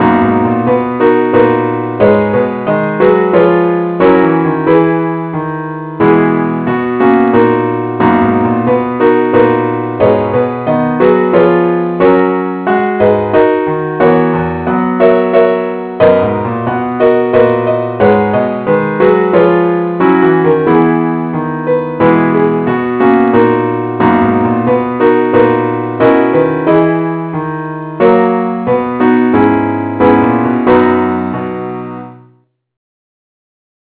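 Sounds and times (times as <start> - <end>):
keyboard playing: 0.0 - 32.1.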